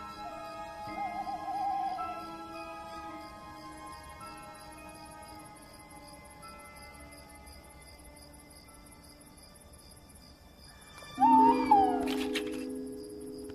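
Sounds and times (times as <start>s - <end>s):
male tawny owl hooting at night: 0.0s - 3.3s, 11.0s - 12.9s
night insects chirring: 0.0s - 13.5s.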